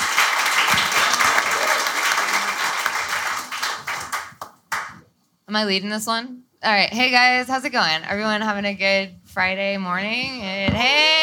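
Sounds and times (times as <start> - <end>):
audience applause for a panel: 0.0 - 5.0
speech: 5.5 - 11.2.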